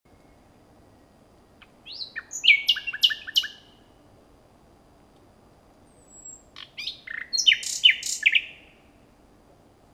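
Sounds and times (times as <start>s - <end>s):
common nightingale Luscinia megarhynchos singing: 0.1s - 4.0s, 5.9s - 9.0s.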